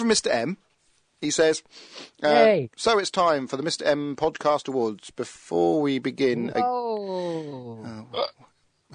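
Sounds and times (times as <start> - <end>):
speech: 0.0 - 8.9
long loud belch: 6.5 - 8.9
short gulping hiccup-like sound: 8.1 - 8.5.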